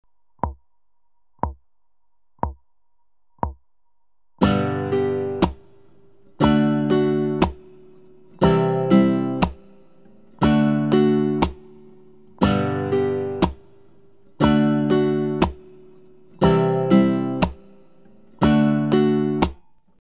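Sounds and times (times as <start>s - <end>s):
acoustic pop guitar strumming: 4.4s - 19.6s.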